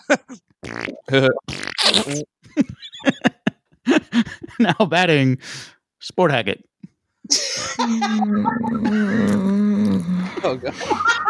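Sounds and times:
fart noises blown with the mouth: 0:00.6 - 0:02.3, 0:09.0 - 0:10.3
speech: 0:01.1 - 0:03.3, 0:04.6 - 0:06.7, 0:07.3 - 0:09.5, 0:10.4 - 0:11.2
laughter: 0:02.5 - 0:04.9, 0:07.3 - 0:09.4, 0:10.2 - 0:11.2.

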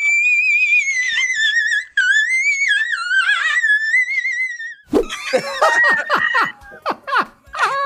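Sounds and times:
high-pitched falsetto shriek: 0:00.0 - 0:04.9
squeaky vocal bursts and squeals: 0:00.0 - 0:04.9
laughter-like sounds: 0:04.9 - 0:07.7.

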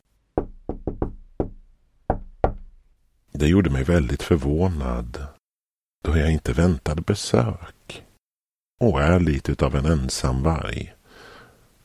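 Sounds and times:
knocking on a door: 0:00.4 - 0:02.8
speech: 0:03.4 - 0:05.2, 0:06.0 - 0:08.1, 0:08.8 - 0:11.0.

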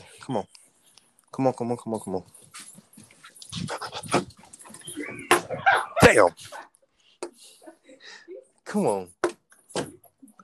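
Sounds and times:
speech: 0:00.3 - 0:00.6, 0:01.4 - 0:02.8, 0:06.1 - 0:06.7, 0:08.7 - 0:09.2
dog panting: 0:03.4 - 0:04.8.

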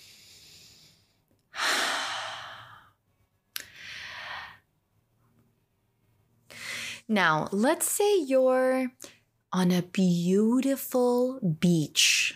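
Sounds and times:
deep breath in and out during a guided relaxation exercise: 0:00.0 - 0:03.0, 0:03.7 - 0:04.7, 0:06.5 - 0:07.1
speech: 0:07.1 - 0:12.3.

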